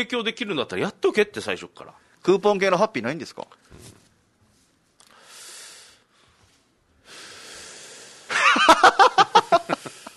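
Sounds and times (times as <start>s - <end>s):
speech: 0.0s - 3.9s
long hissing breaths of an unusual breathing technique: 5.1s - 6.4s, 7.0s - 8.3s
laughter: 8.3s - 10.1s.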